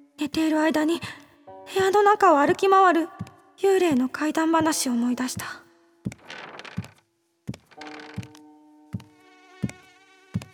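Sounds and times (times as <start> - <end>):
speech: 0.3 - 5.6
dull thumps: 4.6 - 8.4, 9.0 - 10.5
fly buzzing in flight: 7.7 - 8.4, 9.0 - 10.5.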